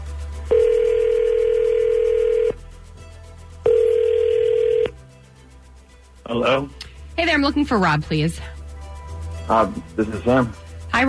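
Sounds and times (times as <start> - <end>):
phone line ringing out as a call is placed: 0.5 - 2.6, 3.7 - 5.0
speech: 7.4 - 8.6, 9.5 - 11.0.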